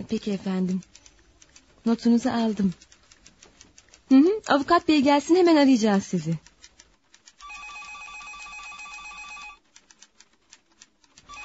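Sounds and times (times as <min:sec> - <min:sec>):
speech: 0:00.0 - 0:01.0, 0:01.8 - 0:02.9, 0:04.1 - 0:06.4
sharp rhythmic typewriter-like clacking: 0:00.0 - 0:11.4
telephone bell ringing: 0:07.4 - 0:09.6.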